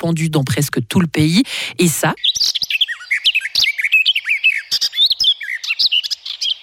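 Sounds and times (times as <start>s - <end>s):
speech: 0.0s - 2.6s
garden warbler singing: 2.0s - 6.6s.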